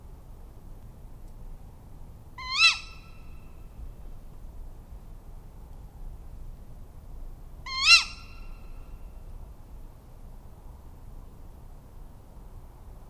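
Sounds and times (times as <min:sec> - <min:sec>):
quiet hiss: 0:00.0 - 0:13.0
tawny owl calling: 0:02.4 - 0:03.4, 0:07.7 - 0:08.6.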